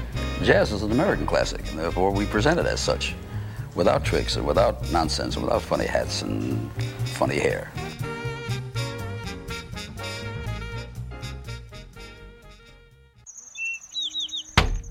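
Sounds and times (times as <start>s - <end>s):
music: 0.0s - 13.3s
speech: 0.4s - 7.9s
bird chirping: 13.2s - 14.9s
bird hitting a window: 14.6s - 14.9s.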